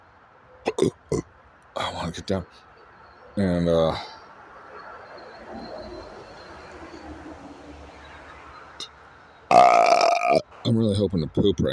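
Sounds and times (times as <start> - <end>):
low noise: 0.0 - 11.7
person with the hiccups burping: 0.7 - 1.2, 9.5 - 10.5
speech: 0.8 - 2.7, 3.4 - 4.2, 10.3 - 11.7.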